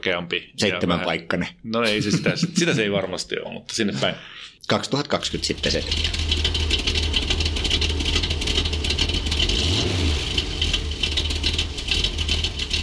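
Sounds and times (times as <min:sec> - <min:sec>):
speech: 0:00.0 - 0:06.4
laughter: 0:01.8 - 0:03.0
broadband road and tire noise: 0:05.2 - 0:12.8
continuous low hum of an electric car: 0:05.2 - 0:12.8
electric car driving: 0:05.2 - 0:12.8.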